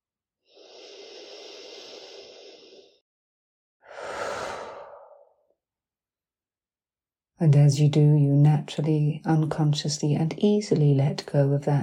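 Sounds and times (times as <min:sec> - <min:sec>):
deep breathing, inhaling and exhaling: 0:00.4 - 0:03.0, 0:03.8 - 0:05.5
speech: 0:07.4 - 0:11.8.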